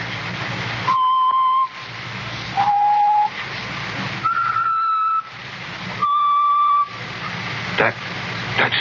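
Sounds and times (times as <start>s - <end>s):
harsh hissing noise: 0.0s - 8.7s
person whistling a tune: 0.9s - 1.8s, 2.6s - 3.3s, 4.2s - 5.3s, 6.0s - 7.0s.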